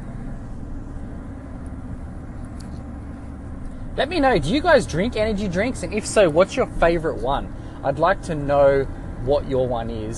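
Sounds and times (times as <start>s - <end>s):
low rumble inside a car in Australia on a warm day: 0.0s - 10.1s
speech: 4.0s - 10.1s.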